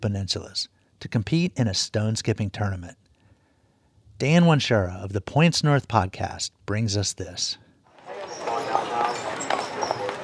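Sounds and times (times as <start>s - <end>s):
speech: 0.0s - 3.0s, 4.2s - 7.6s
horse-drawn carriage hooves clip-clopping on pavement on Mackinac Island: 8.0s - 10.2s
murmuring voices on Mackinac Island: 8.0s - 10.2s.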